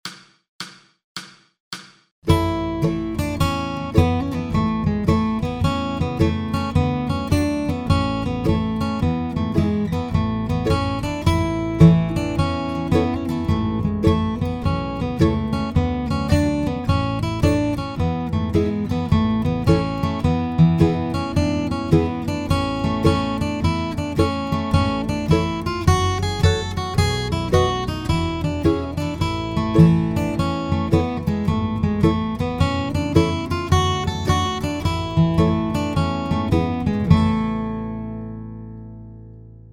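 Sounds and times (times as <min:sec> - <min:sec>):
slow bluegrass guitar Christmas carol: 0:02.3 - 0:39.7.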